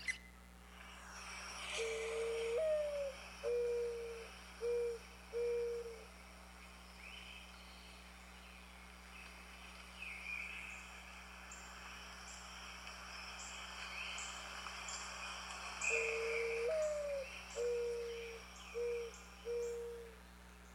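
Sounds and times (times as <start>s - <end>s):
quiet background hiss: 0.0s - 20.7s
Mourning Dove cooing: 1.8s - 6.1s, 15.9s - 20.2s.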